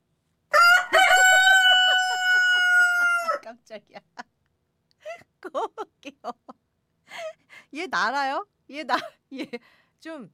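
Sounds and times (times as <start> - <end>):
rooster crowing: 0.5 - 3.5
speech: 3.7 - 4.3, 5.4 - 6.6, 7.7 - 10.3.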